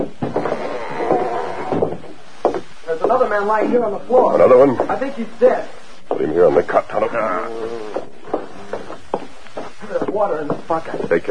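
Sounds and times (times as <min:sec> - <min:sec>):
door creaking open: 0:00.0 - 0:02.1
speech: 0:03.1 - 0:08.1, 0:10.1 - 0:11.2.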